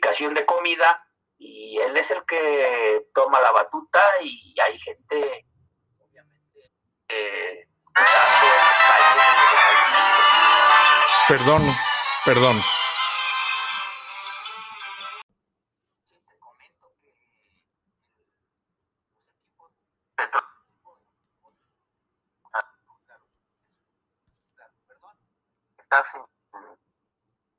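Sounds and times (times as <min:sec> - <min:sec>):
speech: 0:00.1 - 0:05.5, 0:07.1 - 0:09.5, 0:11.3 - 0:12.8
phone ringtone from an incoming call: 0:08.0 - 0:15.2.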